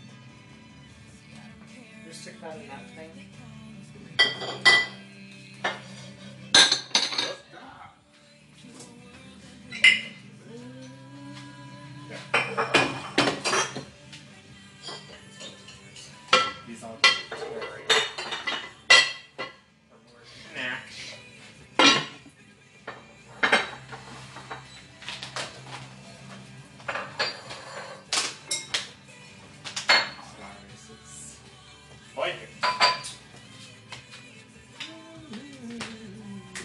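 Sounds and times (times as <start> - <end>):
speech: 2.1 - 3.6, 4.3 - 5.0
plates, pots, pans and cutlery clattering while unloading a dishwasher: 4.1 - 7.5, 9.7 - 10.3, 12.2 - 14.0, 14.8 - 19.6, 21.8 - 29.0, 29.7 - 30.4, 32.6 - 33.3.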